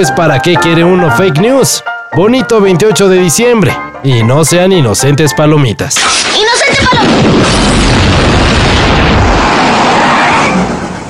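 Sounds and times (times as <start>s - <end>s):
speech: 0.0s - 7.8s
loud sustained explosion with heavy low rumble: 6.0s - 11.0s.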